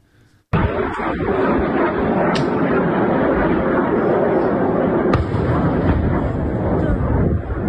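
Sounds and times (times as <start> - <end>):
explosion in air battle at a ship repair plant: 0.5 - 7.6
heavy rumbling roar: 0.6 - 7.6.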